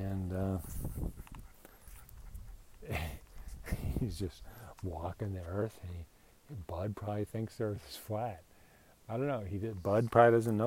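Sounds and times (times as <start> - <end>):
speech: 0.5 - 1.2, 4.0 - 8.5, 9.1 - 10.6
dog panting: 0.6 - 3.6.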